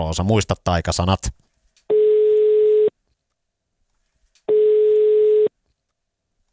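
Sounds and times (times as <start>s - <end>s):
speech: 0.0s - 1.4s
telephone ringback tone while placing a call: 1.9s - 2.9s, 4.5s - 5.5s.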